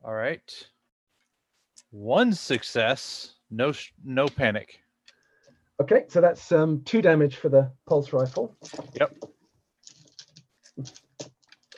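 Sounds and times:
speech: 0.1s - 0.7s, 1.9s - 4.8s, 5.8s - 9.3s, 10.8s - 11.0s
dice clattering in a dice tray during a tabletop role-playing game: 8.2s - 11.7s.

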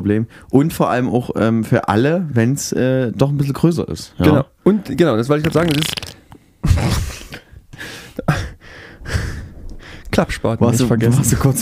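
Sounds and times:
speech: 0.0s - 6.0s, 10.2s - 11.5s
breathy sputtering fart noises blown by mouth: 5.5s - 7.5s.

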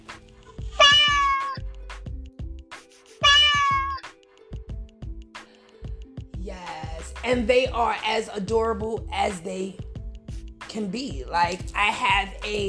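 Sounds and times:
kittens meowing: 0.8s - 1.6s, 3.2s - 4.0s
speech: 7.2s - 9.8s, 10.8s - 12.6s.

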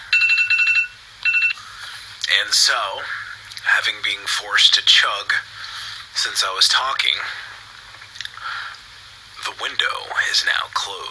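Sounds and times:
phone timer alarm with rapid pulsing electronic beeps: 0.1s - 1.6s
speech: 2.3s - 5.5s, 6.2s - 7.4s, 9.6s - 11.1s.

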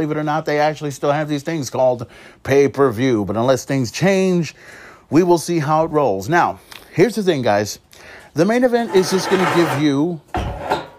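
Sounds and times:
speech: 0.0s - 10.4s
wooden chair being moved across the floor: 8.8s - 10.9s.

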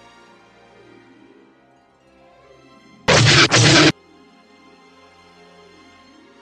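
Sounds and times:
sci-fi starfighter blaster shots hitting ship: 3.1s - 3.9s.

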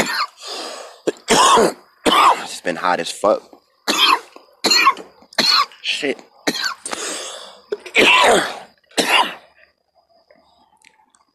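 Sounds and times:
harsh coughing: 0.0s - 0.4s, 1.1s - 2.5s, 3.9s - 5.8s, 6.4s - 7.0s, 7.7s - 9.5s
speech: 1.6s - 1.8s, 2.6s - 3.6s, 6.0s - 6.3s, 8.2s - 8.6s.

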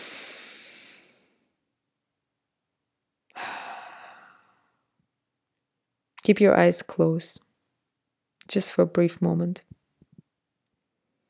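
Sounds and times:
deep airy breaths through the nose: 0.0s - 1.4s, 3.4s - 4.7s
speech: 6.3s - 7.5s, 8.5s - 9.7s.

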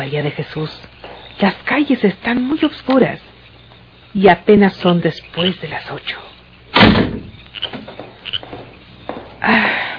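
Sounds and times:
speech: 0.0s - 3.3s, 4.1s - 6.3s
door swinging shut with a solid thud: 6.7s - 9.2s.

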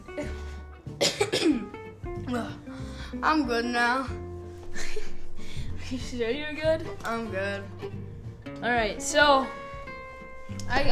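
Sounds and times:
person coughing with a pickle flake stuck in the throat: 1.0s - 1.8s
speech: 2.3s - 4.2s, 5.9s - 8.0s, 8.6s - 9.6s, 10.7s - 10.9s.

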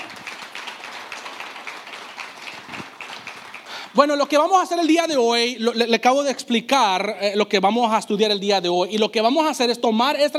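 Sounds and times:
group of people applauding: 0.0s - 4.2s
speech: 3.9s - 10.3s.

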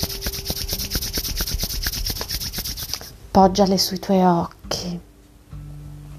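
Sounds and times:
hands rubbing together: 0.0s - 3.1s
speech: 3.4s - 5.1s.

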